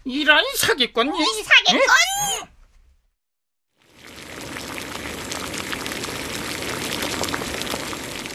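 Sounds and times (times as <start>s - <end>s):
speech: 0.0s - 2.5s
oil boiling in a large cauldron: 3.7s - 8.3s.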